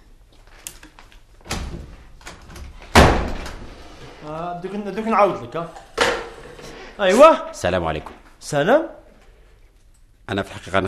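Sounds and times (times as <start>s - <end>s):
door opening with rattling: 1.4s - 3.8s
door shutting with a loud thud: 2.6s - 3.8s
speech: 4.2s - 5.8s, 7.0s - 9.0s, 10.3s - 10.8s.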